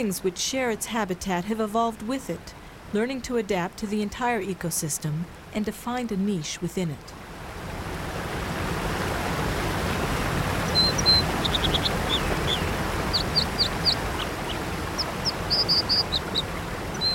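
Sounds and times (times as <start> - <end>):
speech: 0.0 - 7.2
waterfall rushing: 7.5 - 17.1
American dipper chirping and trilling: 10.6 - 17.1.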